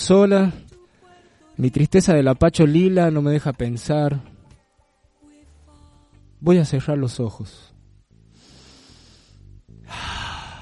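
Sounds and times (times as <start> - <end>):
speech: 0.0 - 0.6, 1.6 - 4.3, 6.4 - 7.7
deep breath: 8.3 - 10.6.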